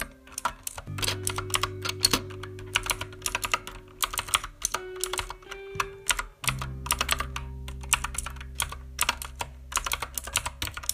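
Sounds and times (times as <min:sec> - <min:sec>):
rapid uneven keyboard typing: 0:00.0 - 0:10.9
low steady hum: 0:00.8 - 0:10.9.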